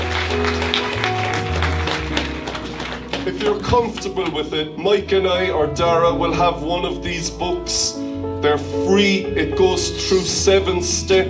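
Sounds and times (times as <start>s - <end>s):
audience applauding: 0.0s - 4.5s
sustained keyboard or organ chords: 0.0s - 11.2s
speech: 3.3s - 11.2s.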